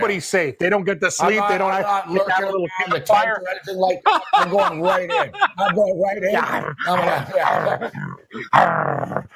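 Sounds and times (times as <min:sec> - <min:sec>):
speech: 0:00.0 - 0:09.3
laughter: 0:02.1 - 0:08.6
person imitating an angry red wolf growling: 0:06.4 - 0:09.3.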